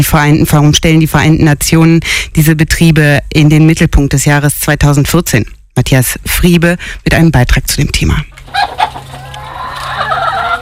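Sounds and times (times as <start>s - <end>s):
speech: 0.0s - 9.0s
chickens clucking on an organic farm: 8.3s - 10.6s.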